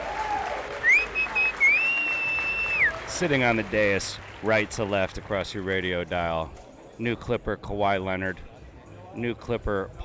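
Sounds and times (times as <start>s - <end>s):
crowd applauding and cheering: 0.0s - 6.0s
shrill whistle: 0.8s - 3.0s
speech: 3.2s - 8.5s, 9.2s - 10.0s.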